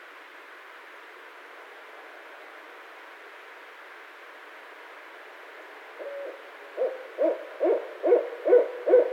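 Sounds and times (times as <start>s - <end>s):
barred owl hooting: 6.0s - 9.1s.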